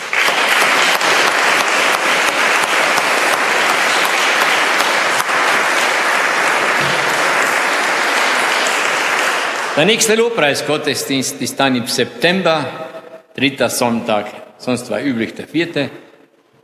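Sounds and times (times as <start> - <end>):
congregation applauding in a church: 0.0 - 10.9
speech: 9.8 - 12.8, 13.4 - 16.0.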